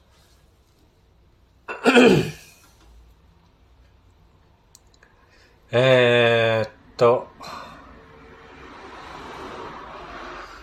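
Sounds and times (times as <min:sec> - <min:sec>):
speech: 0:02.0 - 0:02.4, 0:05.7 - 0:06.1
traffic noise from cars passing: 0:05.2 - 0:10.6.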